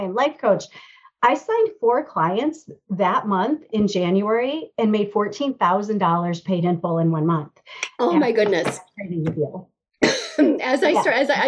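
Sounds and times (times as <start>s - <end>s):
speech: 0.0s - 9.7s, 10.4s - 11.4s
cough and throat-clearing from someone drinking throat coat tea: 10.0s - 10.6s.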